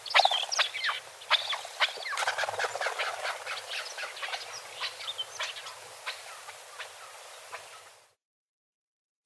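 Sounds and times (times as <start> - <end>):
Alectoris chukar partridge call: 0.0 - 6.2.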